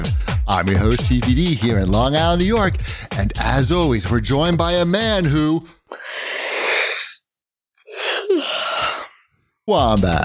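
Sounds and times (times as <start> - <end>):
speech: 0.5 - 6.0, 9.7 - 10.2
sampled human yawn: 5.9 - 7.2, 7.9 - 9.3.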